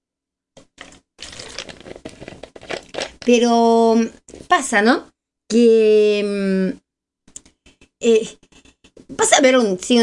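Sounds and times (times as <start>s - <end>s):
person sipping water: 0.6s - 3.2s
soft splashy crinkly handling noise: 0.6s - 3.4s
speech: 3.2s - 6.8s, 8.0s - 10.0s.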